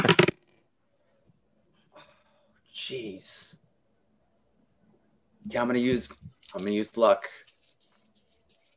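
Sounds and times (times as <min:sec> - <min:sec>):
speech: 0:02.9 - 0:03.6, 0:05.5 - 0:07.5
dice rolled for a constitution saving throw in a tabletop role-playing game: 0:06.3 - 0:07.1.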